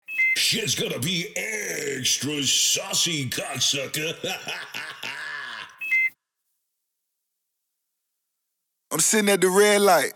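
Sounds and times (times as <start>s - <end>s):
laughter: 0.4s - 6.1s
speech: 0.5s - 4.9s, 9.0s - 10.1s
person groaning: 1.3s - 2.4s, 3.4s - 5.8s
ankle monitor beeping, not charged: 5.8s - 6.2s.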